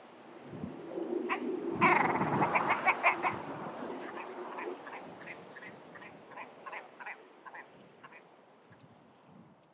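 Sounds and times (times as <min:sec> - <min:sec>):
faint outdoor hiss: 0:00.0 - 0:09.7
grouse alarm call: 0:01.3 - 0:08.3.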